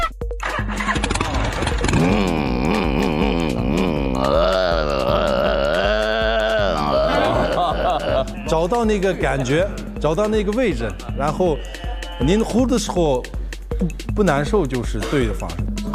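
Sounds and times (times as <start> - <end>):
laughter: 0.4 - 9.9, 10.7 - 12.2
human voice imitating a Harley motorcycle engine: 1.0 - 8.7
speech: 8.6 - 15.6.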